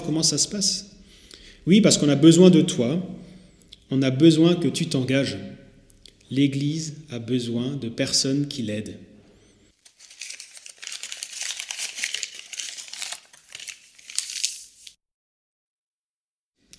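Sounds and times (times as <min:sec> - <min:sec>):
speech: 0:00.1 - 0:01.0, 0:01.6 - 0:03.2, 0:03.9 - 0:05.6, 0:06.3 - 0:09.1
paper being crumpled into a ball during a church service: 0:09.8 - 0:15.0.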